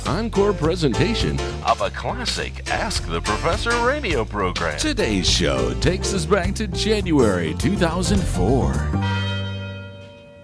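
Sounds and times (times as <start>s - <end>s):
speech: 0.1s - 9.2s
university tower chimes ringing: 8.6s - 10.4s.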